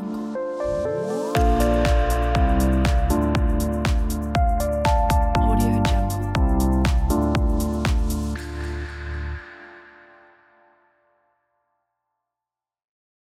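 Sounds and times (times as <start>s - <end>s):
ambient house logo jingle: 0.2s - 10.3s.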